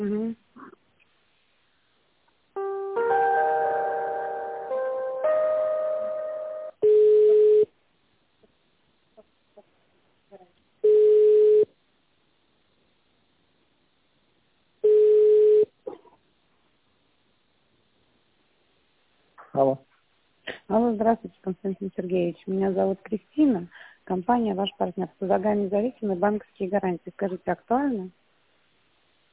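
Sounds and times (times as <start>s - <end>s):
telephone ringback tone on a connecting call: 3.0s - 7.7s, 10.8s - 11.7s, 14.9s - 15.7s
speech: 21.1s - 28.2s.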